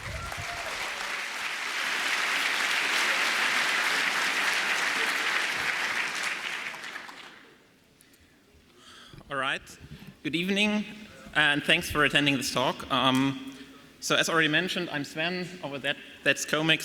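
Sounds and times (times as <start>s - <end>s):
large audience applause: 0.0s - 7.6s
speech: 9.5s - 16.8s.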